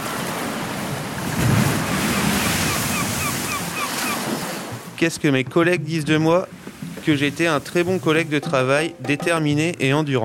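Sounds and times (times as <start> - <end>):
waves breaking on a shore: 0.0 - 5.1, 6.2 - 8.4
wind buffeting: 0.0 - 8.1
speech: 5.0 - 10.2.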